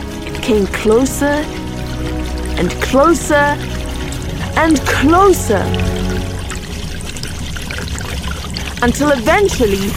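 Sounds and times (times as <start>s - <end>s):
water bursting out of a pipe: 0.0s - 9.9s
speech: 0.5s - 3.8s, 4.6s - 6.4s, 8.8s - 9.9s.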